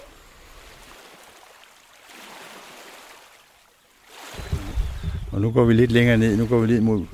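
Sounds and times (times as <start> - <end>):
water surging and splashing: 0.0 - 7.1
waves lapping on the shore: 0.0 - 7.1
speech: 5.4 - 7.1.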